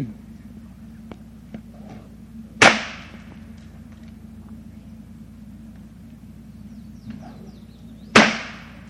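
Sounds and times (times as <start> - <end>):
low hum: 0.0 - 8.8
long whip cracking: 2.6 - 3.2, 8.1 - 8.8.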